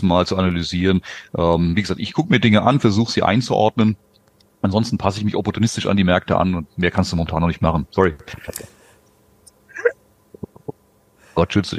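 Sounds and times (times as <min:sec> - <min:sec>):
speech: 0:00.0 - 0:08.8, 0:11.4 - 0:11.7
small clicks: 0:04.2 - 0:04.5
person sneezing: 0:09.7 - 0:09.9.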